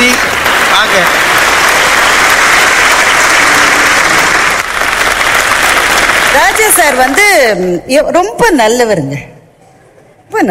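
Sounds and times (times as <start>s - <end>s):
audience applause: 0.0s - 7.5s
speech: 6.7s - 9.3s.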